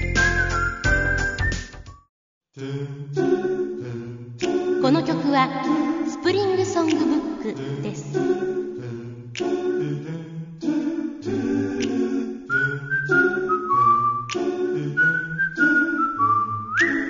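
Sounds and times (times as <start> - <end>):
clear whistled melody: 0.0 - 2.1, 12.5 - 17.0
speech: 2.6 - 3.2, 4.9 - 8.6
live doo-wop style vocal chorus: 2.6 - 17.0.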